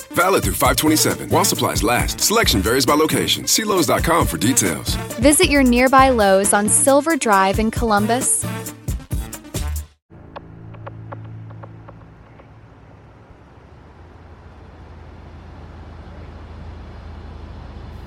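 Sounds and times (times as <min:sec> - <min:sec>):
road hum: 0:00.0 - 0:08.6, 0:10.1 - 0:18.0
speech: 0:00.1 - 0:08.5
car engine rumble on a street: 0:00.4 - 0:06.8, 0:10.1 - 0:18.0.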